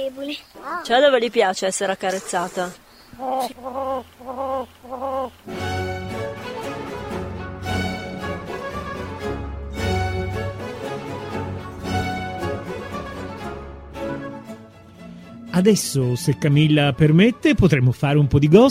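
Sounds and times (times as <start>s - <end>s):
speech: 0.0s - 5.7s, 15.6s - 18.6s
hen clucking: 2.0s - 5.5s
loud busy music: 5.5s - 18.6s.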